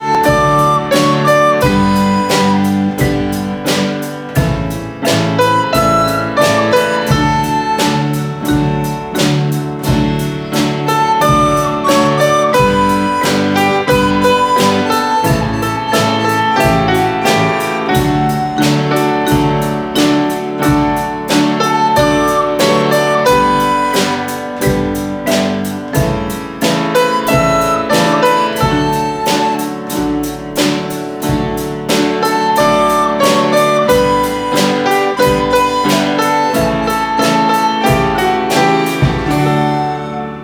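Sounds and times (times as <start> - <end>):
school break bell playing a Christmas song: 0.0 - 40.4.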